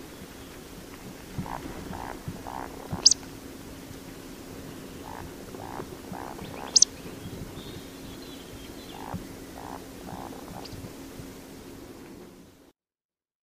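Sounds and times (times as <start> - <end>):
steady faint background hiss: 0.0 - 12.7
Eurasian woodcock Scolopax rusticola croaking grunts: 1.4 - 3.3, 4.9 - 7.0, 8.9 - 10.8.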